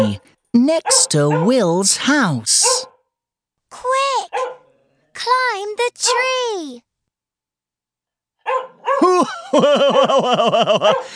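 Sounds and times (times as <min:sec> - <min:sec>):
speech: 0:00.0 - 0:02.9, 0:05.2 - 0:06.9, 0:08.5 - 0:11.1
dog barking with high yappy barks: 0:00.8 - 0:01.6, 0:02.6 - 0:03.0, 0:04.2 - 0:04.7, 0:08.4 - 0:09.1, 0:10.7 - 0:11.1
dog yelping: 0:04.3 - 0:04.7, 0:08.4 - 0:09.1
laughter: 0:09.0 - 0:11.1.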